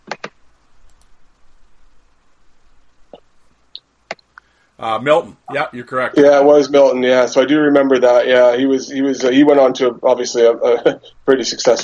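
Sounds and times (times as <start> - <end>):
computer mouse clicks: 0.0 - 1.5
speech: 4.8 - 11.8.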